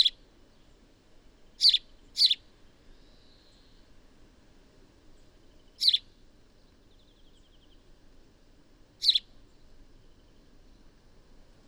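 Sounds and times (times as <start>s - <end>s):
house sparrow chirps: 1.6s - 2.4s, 5.8s - 6.0s, 9.0s - 9.3s.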